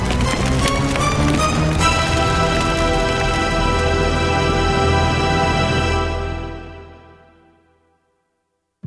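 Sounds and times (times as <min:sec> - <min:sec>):
fast-spreading fire crackling and roaring in curtains: 0:00.0 - 0:06.7.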